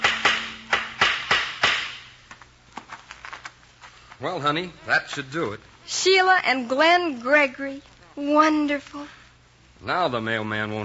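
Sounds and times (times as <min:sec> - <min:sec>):
hammer nailing up a sign outside a house: 0:00.0 - 0:02.2
speech: 0:04.2 - 0:09.2, 0:09.8 - 0:10.8.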